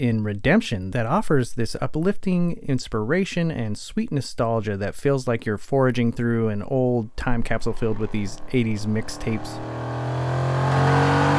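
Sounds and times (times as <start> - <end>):
speech: 0.0 - 10.0
car engine revving: 7.1 - 11.3.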